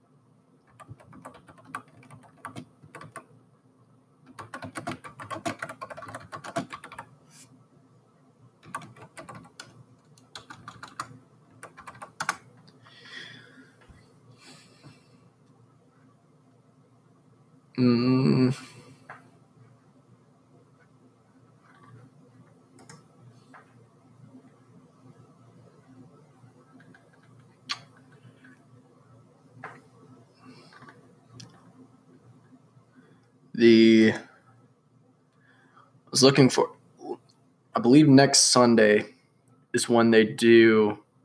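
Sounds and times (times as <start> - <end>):
typing on a computer keyboard: 0.6 - 3.3, 4.3 - 7.1, 8.6 - 12.5, 21.7 - 22.0, 22.8 - 23.0, 26.7 - 28.6, 30.6 - 31.6
speech: 33.6 - 34.0, 36.2 - 36.8, 37.8 - 39.1, 39.7 - 41.0.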